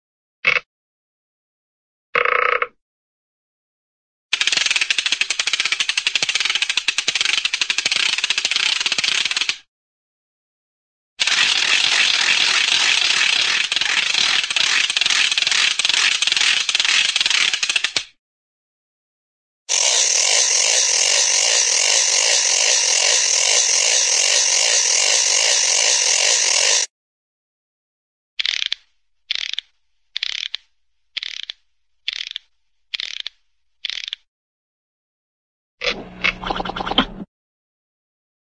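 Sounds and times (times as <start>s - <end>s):
cartoon short ratchet movement: 4.3s - 9.7s, 11.2s - 18.2s, 19.7s - 26.9s, 28.4s - 34.3s, 35.8s - 37.2s.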